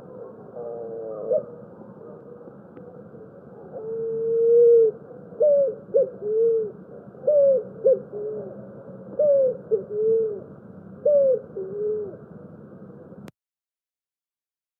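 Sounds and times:
Picazuro pigeon cooing song: 0.0 - 2.4, 3.6 - 12.5
steady low background hiss: 0.0 - 13.3.

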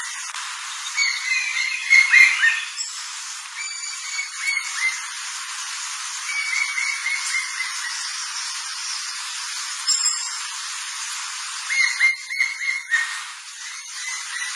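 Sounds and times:
background hiss: 0.0 - 14.5
cream-colored woodpecker calling: 0.8 - 2.8, 3.6 - 5.2, 6.3 - 8.5, 11.7 - 14.5.

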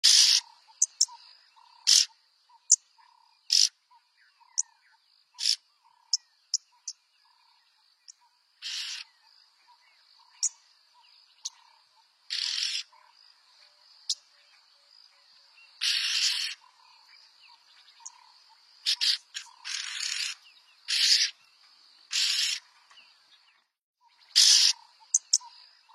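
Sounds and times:
yellow-billed oxpecker calling: 0.0 - 7.4, 8.1 - 10.6, 11.4 - 13.1, 15.8 - 21.4, 22.1 - 22.7, 24.2 - 25.9.

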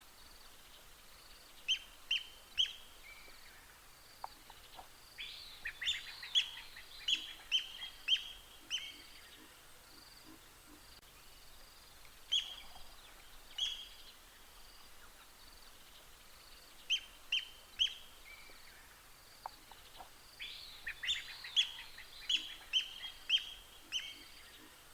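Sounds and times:
white-throated barbilhao singing: 0.2 - 24.9.

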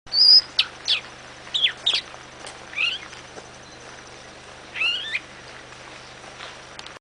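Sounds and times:
Galapagos mockingbird singing: 0.1 - 2.1, 2.7 - 5.4.

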